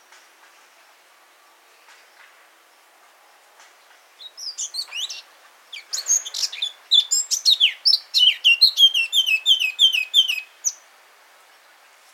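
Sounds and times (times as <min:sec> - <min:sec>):
Eurasian blackcap Sylvia atricapilla song with warbling and whistled notes: 0:03.6 - 0:10.9.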